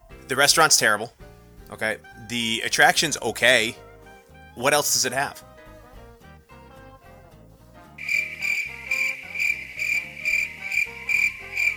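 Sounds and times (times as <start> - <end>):
speech: 0.3 - 3.8, 4.6 - 5.5
crickets chirping: 8.0 - 11.7.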